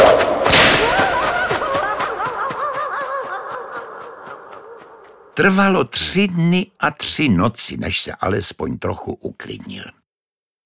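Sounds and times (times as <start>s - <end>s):
whip lash whistling through the air and cracking: 0.0s - 2.6s
warbling cackle-like chirps: 0.5s - 5.3s
speech: 5.4s - 10.0s.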